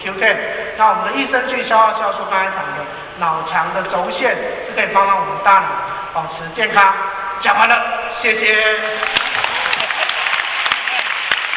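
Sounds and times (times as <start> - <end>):
speech: 0.0 - 9.2
crowd clapping in dense continuous applause: 8.8 - 11.5.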